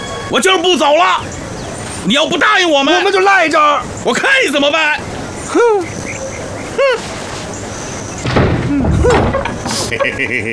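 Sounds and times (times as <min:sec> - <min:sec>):
speech: 0:00.3 - 0:01.4, 0:02.0 - 0:06.0, 0:06.8 - 0:07.2, 0:09.9 - 0:10.5
laughter: 0:05.5 - 0:06.0, 0:06.7 - 0:07.2, 0:08.7 - 0:10.5
shuffling noise: 0:06.8 - 0:08.1, 0:08.8 - 0:10.0
door creaking open with hinge squeaks: 0:08.1 - 0:09.9.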